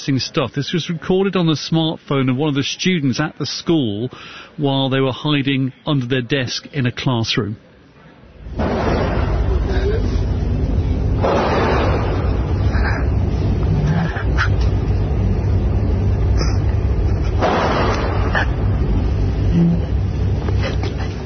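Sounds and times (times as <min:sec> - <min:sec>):
speech: 0:00.0 - 0:07.6
constant roar of noise: 0:00.0 - 0:21.2
gunshots during a school shooting: 0:08.6 - 0:09.6, 0:11.2 - 0:12.5, 0:17.4 - 0:18.3.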